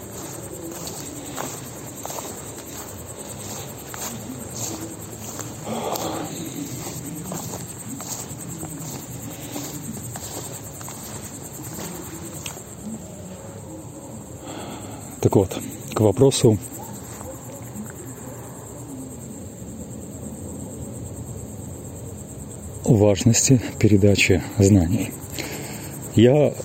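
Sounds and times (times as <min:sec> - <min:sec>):
soft rustling footsteps through grass: 0:00.0 - 0:13.1
chorus of crickets chirping: 0:00.0 - 0:26.6
speech: 0:15.3 - 0:16.7, 0:22.9 - 0:25.2, 0:26.2 - 0:26.6.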